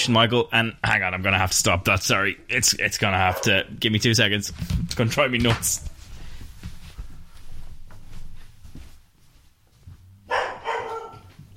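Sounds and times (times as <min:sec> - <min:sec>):
speech: 0:00.0 - 0:05.9
dog barking and whimpering: 0:10.3 - 0:11.3.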